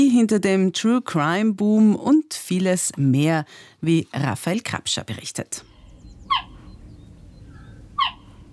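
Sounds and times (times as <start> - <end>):
speech: 0.0 - 5.7
low steady outdoor rumble: 4.2 - 8.5
cheetah chirping: 5.6 - 8.5.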